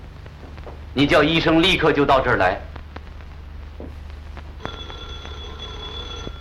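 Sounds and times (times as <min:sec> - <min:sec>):
low steady hum: 0:00.0 - 0:06.3
speech: 0:01.0 - 0:02.7
telephone ringing: 0:04.6 - 0:06.3.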